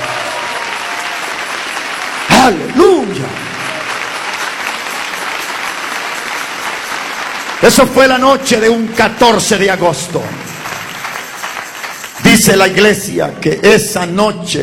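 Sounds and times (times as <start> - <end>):
audience applauding: 0.0 - 13.1
speech: 2.5 - 3.5, 7.6 - 10.5, 12.4 - 14.6.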